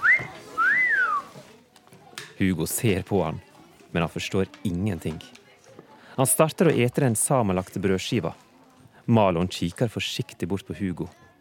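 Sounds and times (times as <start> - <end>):
person whistling at someone: 0.0 - 1.3
speech: 2.4 - 5.4, 6.2 - 8.4, 9.1 - 11.2.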